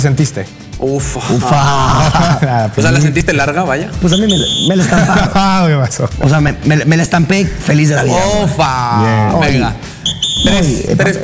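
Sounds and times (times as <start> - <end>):
speech: 0.0 - 11.2
laughter: 1.2 - 6.6
short high-pitched electronic beeps: 4.0 - 4.8, 10.0 - 10.8.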